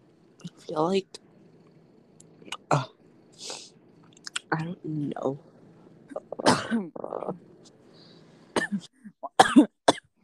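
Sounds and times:
speech: 0:00.5 - 0:01.2, 0:02.7 - 0:03.6, 0:04.5 - 0:05.5, 0:06.4 - 0:07.5
person coughing harshly: 0:06.2 - 0:07.2, 0:08.6 - 0:10.1.

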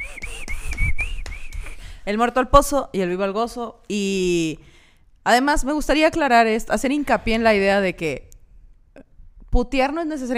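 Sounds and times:
sharp taps: 0:00.0 - 0:01.8
sustained whistled tone: 0:00.0 - 0:02.0
speech: 0:02.1 - 0:08.3, 0:09.0 - 0:10.3.

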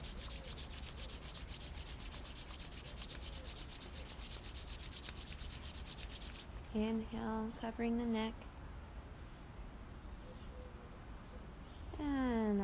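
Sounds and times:
hands rubbing together during a guided self-massage exercise: 0:00.0 - 0:07.0
speech: 0:06.7 - 0:08.4.

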